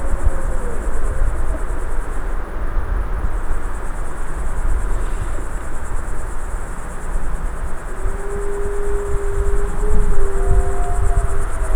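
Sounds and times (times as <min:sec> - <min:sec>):
adult wolves howling: 0:00.0 - 0:02.2, 0:07.8 - 0:11.7
crickets chirring: 0:00.0 - 0:11.7.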